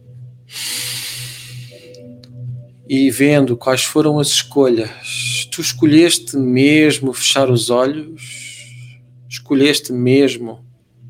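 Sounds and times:
low steady hum: 0:00.0 - 0:11.0
person inhaling deeply during a guided meditation: 0:00.5 - 0:02.0
speech: 0:02.9 - 0:08.4, 0:09.5 - 0:10.7.

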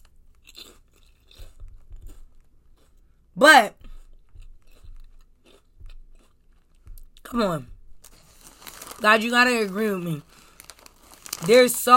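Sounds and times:
crunchy chewing into a microphone: 0:00.0 - 0:03.2, 0:03.8 - 0:07.3, 0:10.2 - 0:11.7
speech: 0:03.4 - 0:03.8, 0:07.3 - 0:07.7, 0:09.0 - 0:10.3, 0:11.4 - 0:11.9.

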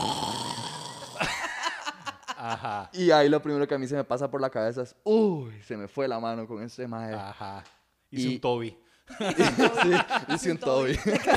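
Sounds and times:
voice imitating a long raspy snore: 0:00.0 - 0:01.2
laughter: 0:01.2 - 0:03.0, 0:09.1 - 0:11.3
speech: 0:02.5 - 0:11.3.

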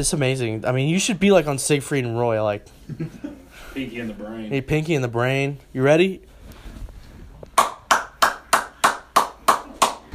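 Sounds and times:
speech: 0:00.0 - 0:06.3
one-handed clapping: 0:07.5 - 0:10.1.

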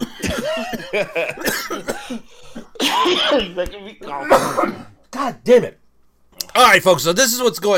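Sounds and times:
person coughing: 0:00.0 - 0:05.4
speech: 0:00.4 - 0:05.8, 0:06.6 - 0:07.7
person gasping: 0:02.0 - 0:02.8.

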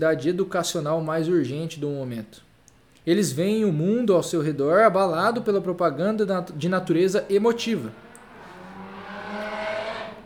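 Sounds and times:
speech: 0:00.0 - 0:02.5, 0:03.1 - 0:08.0
motorcycle passing by outside: 0:07.7 - 0:10.2.

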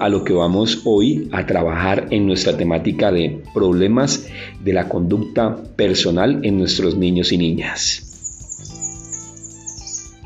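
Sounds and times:
speech: 0:00.0 - 0:08.1
small birds chirping: 0:07.7 - 0:10.2.

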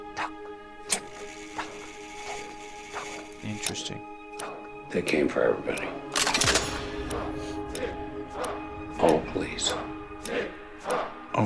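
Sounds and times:
clock ticking: 0:03.3 - 0:11.4
speech: 0:03.7 - 0:04.1, 0:04.9 - 0:06.6, 0:09.0 - 0:09.9.

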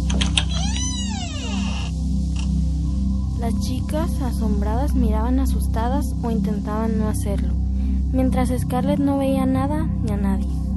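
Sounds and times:
door creaking slowly open: 0:00.1 - 0:02.5
speech: 0:03.5 - 0:10.6.

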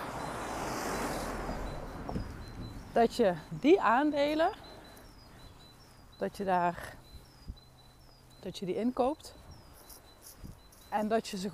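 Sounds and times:
bus driving past with engine and road noise: 0:00.0 - 0:03.6
faint high chirps: 0:00.0 - 0:11.5
speech: 0:03.0 - 0:04.7, 0:06.2 - 0:07.0, 0:08.4 - 0:09.4, 0:10.9 - 0:11.5.

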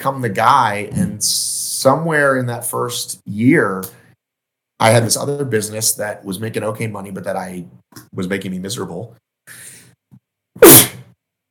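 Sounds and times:
speech: 0:00.0 - 0:04.0, 0:04.8 - 0:09.6
sneeze from a person with mild COVID: 0:10.6 - 0:11.2.

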